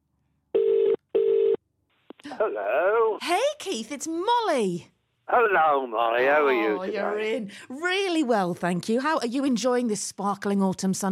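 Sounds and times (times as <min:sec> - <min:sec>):
phone line electronic ring tones after dialing: 0:00.6 - 0:01.6
speech: 0:02.3 - 0:11.1.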